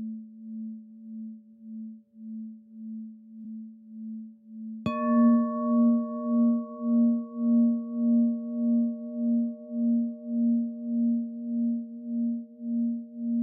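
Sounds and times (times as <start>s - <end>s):
singing bowl humming: 0.0s - 13.4s
singing bowl strike: 4.9s - 10.4s.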